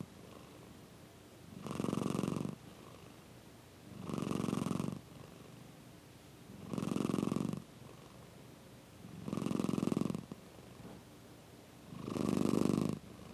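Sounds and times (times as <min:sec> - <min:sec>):
cat purring: 0:00.0 - 0:00.7, 0:01.5 - 0:03.2, 0:03.9 - 0:05.6, 0:06.5 - 0:08.3, 0:09.0 - 0:11.0, 0:11.9 - 0:13.3.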